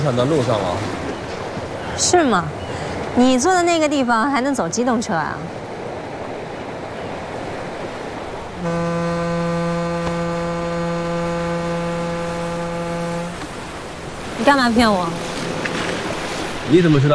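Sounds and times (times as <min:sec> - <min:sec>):
speech: 0:00.0 - 0:01.0, 0:02.0 - 0:05.6, 0:08.6 - 0:09.1, 0:14.5 - 0:15.3, 0:16.7 - 0:17.1
wind at the shore: 0:00.0 - 0:17.1
surf crashing at the shore: 0:07.2 - 0:17.1
ship horn blowing: 0:08.3 - 0:16.6.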